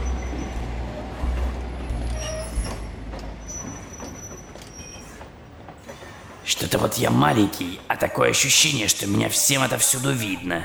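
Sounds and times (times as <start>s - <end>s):
thin metallic train wheel squeals: 0.0s - 6.3s
train rumbling as it pulls into its terminal station: 0.0s - 10.6s
speech: 6.5s - 10.6s.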